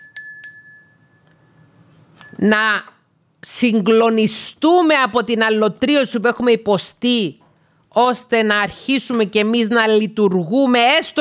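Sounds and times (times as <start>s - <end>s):
small hand bell ringing: 0.0s - 2.4s
speech: 2.3s - 11.1s.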